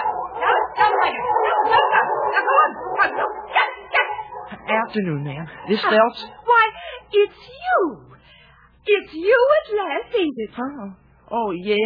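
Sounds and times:
several dogs barking and yipping excitedly: 0:00.0 - 0:06.6
speech: 0:04.9 - 0:06.4, 0:07.1 - 0:08.1, 0:08.9 - 0:11.8.

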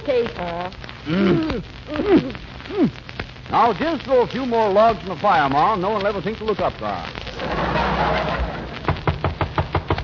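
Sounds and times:
low steady noise: 0:00.0 - 0:10.0
speech: 0:00.1 - 0:08.5
laughter: 0:07.3 - 0:08.9
knocking on a door: 0:08.9 - 0:10.0.

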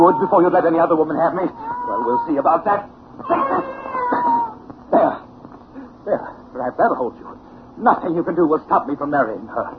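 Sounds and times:
speech: 0:00.0 - 0:03.8, 0:06.1 - 0:09.7
agitated cat yowling: 0:00.0 - 0:04.6.

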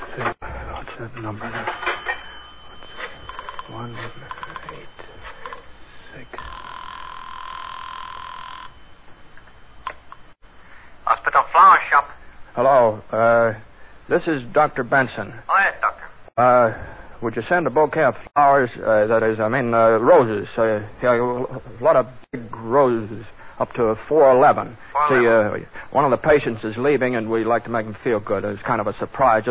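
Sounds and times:
steady telephone tone: 0:00.5 - 0:11.2
speech: 0:01.0 - 0:01.9, 0:03.8 - 0:05.0, 0:11.9 - 0:15.8, 0:16.4 - 0:29.4
telephone ringing: 0:01.1 - 0:10.2.

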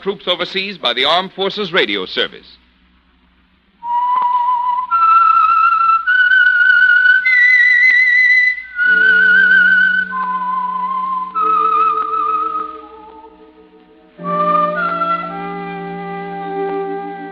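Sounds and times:
speech: 0:00.0 - 0:02.6
whistled melody: 0:03.8 - 0:17.3
soft low instrumental tone: 0:08.8 - 0:17.3.

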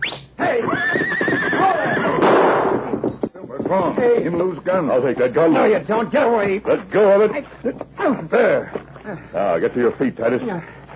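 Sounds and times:
big stallion neighing as it throws its rider: 0:00.4 - 0:02.3
speech: 0:03.7 - 0:10.9.

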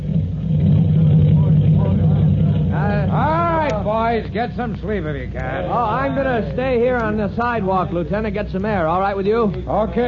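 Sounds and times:
indistinct voices: 0:00.0 - 0:04.7
heavy fire engine rumbling while backing into firehouse: 0:00.0 - 0:06.7
speech: 0:04.1 - 0:10.0.

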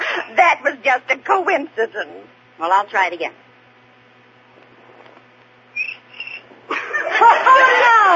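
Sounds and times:
speech: 0:00.4 - 0:03.4
cricket chirping: 0:05.7 - 0:06.5
people chuckling: 0:06.7 - 0:08.1.

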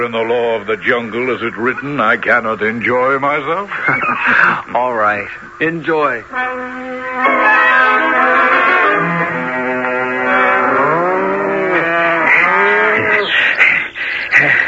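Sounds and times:
speech: 0:00.0 - 0:07.4
laughter: 0:03.6 - 0:04.8, 0:10.4 - 0:14.6
herd of cows and buffaloes mooing: 0:08.4 - 0:13.4.

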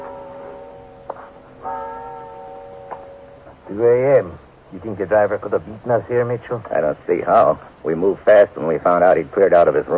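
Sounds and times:
cathedral clock and bell tower bells chiming in Hamburg: 0:00.0 - 0:04.1
speech: 0:03.7 - 0:09.9.

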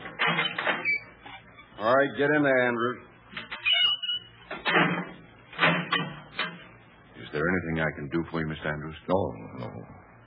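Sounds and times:
heavy prison cell door clanking shut: 0:00.0 - 0:01.0, 0:03.4 - 0:06.7
speech: 0:01.8 - 0:03.1, 0:07.8 - 0:10.0.

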